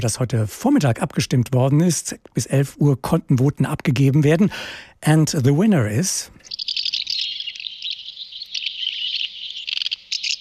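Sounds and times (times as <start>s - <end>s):
speech: 0.0s - 6.5s
house martins twittering: 6.3s - 10.4s.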